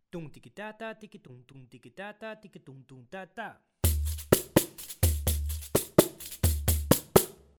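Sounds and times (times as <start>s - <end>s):
pandeiro rhythm: 3.8s - 7.5s.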